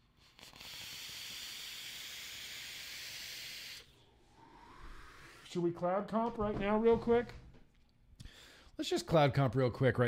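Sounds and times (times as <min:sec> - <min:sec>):
vape coils on a mech mod sizzling and crackling: 0:00.1 - 0:04.0
speech: 0:05.5 - 0:07.4, 0:08.8 - 0:10.0.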